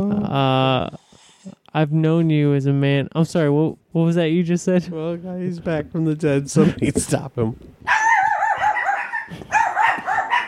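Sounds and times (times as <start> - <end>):
speech: 0.3 - 1.0, 1.8 - 8.0
dogs barking with high yelping barks: 7.9 - 10.4.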